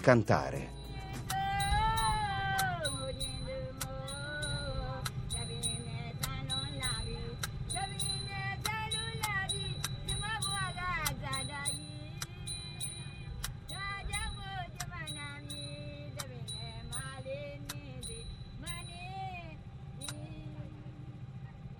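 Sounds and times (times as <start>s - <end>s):
speech: 0.0s - 0.8s
boat engine rumble crossing a river: 0.0s - 21.7s
woman singing a gliding melody: 0.7s - 21.5s.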